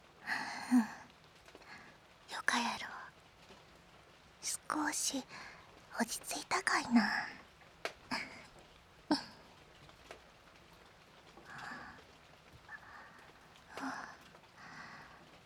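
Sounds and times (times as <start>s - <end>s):
light rain falling: 0.0s - 15.4s
speech: 5.1s - 7.4s.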